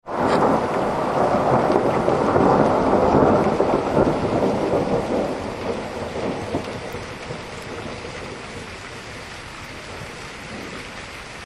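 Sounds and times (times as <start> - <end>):
rain: 0.0 - 11.4
thunder: 0.1 - 9.2.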